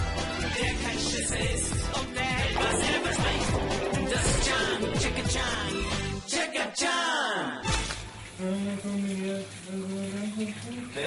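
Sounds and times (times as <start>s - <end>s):
shower water running: 0.0s - 6.2s, 7.6s - 11.0s
person humming sustained tones: 8.4s - 10.9s.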